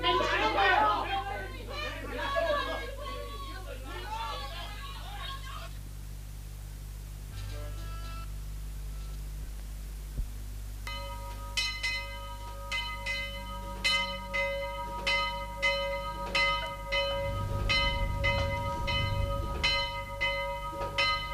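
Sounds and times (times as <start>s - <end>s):
laughter: 0.0s - 5.6s
low rumbling undertone: 8.3s - 21.3s
church bell tolling: 10.8s - 21.3s.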